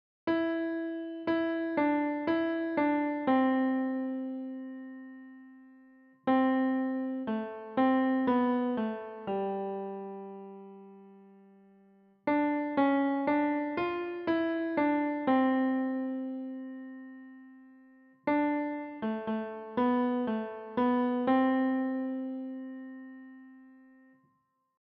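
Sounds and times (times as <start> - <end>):
piano Christmas carol: 0.3 - 24.2.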